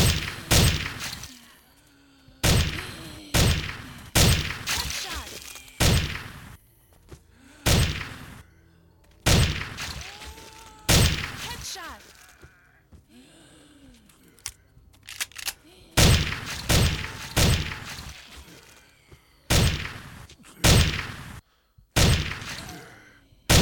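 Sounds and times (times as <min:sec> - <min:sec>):
gunfire in a video game: 0:00.0 - 0:01.3, 0:02.4 - 0:05.2, 0:05.8 - 0:06.6, 0:07.7 - 0:08.3, 0:09.3 - 0:10.2, 0:16.0 - 0:18.1, 0:19.5 - 0:21.4, 0:22.0 - 0:22.8.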